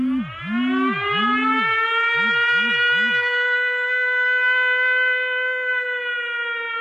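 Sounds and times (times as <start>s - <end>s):
pulsing swooping low tones: 0.0s - 3.4s
air raid siren wailing: 0.0s - 6.7s.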